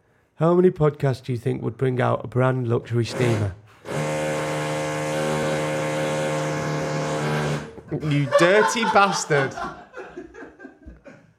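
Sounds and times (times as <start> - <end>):
speech: 0.4 - 3.6, 7.9 - 9.8
power drill whirring: 3.1 - 7.8
laughter: 7.8 - 11.3.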